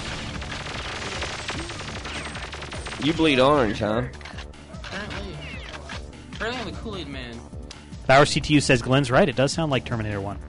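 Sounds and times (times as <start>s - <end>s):
Nintendo 64 video game gunfire: 0.0s - 3.8s
speech: 3.0s - 4.2s, 6.4s - 10.4s.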